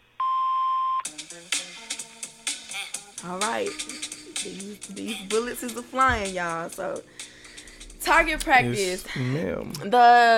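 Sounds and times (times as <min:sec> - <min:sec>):
voicemail tone beep: 0:00.2 - 0:01.0
speech: 0:03.2 - 0:07.2, 0:08.0 - 0:10.3.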